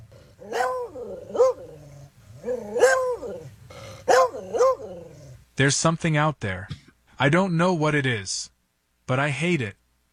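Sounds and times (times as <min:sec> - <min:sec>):
male pet dog barking aggressively: 0:00.0 - 0:05.4
speech: 0:05.6 - 0:08.5, 0:09.1 - 0:10.1.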